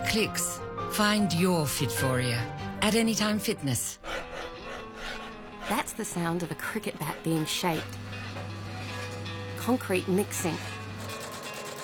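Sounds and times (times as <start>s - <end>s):
speech: 0.1s - 4.1s, 5.7s - 8.0s, 9.6s - 10.8s
machine stitching socks, whirring and ratcheting, in Australia: 5.0s - 11.8s.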